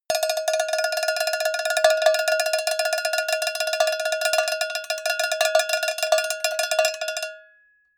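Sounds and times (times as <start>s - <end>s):
cowbell tremolo: 0.1s - 7.5s.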